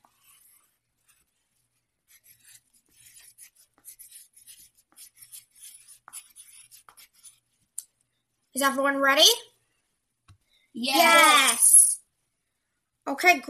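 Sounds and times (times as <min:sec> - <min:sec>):
pen or pencil writing on paper: 0:00.0 - 0:07.8
speech: 0:08.6 - 0:09.5, 0:10.8 - 0:11.6, 0:13.1 - 0:13.4.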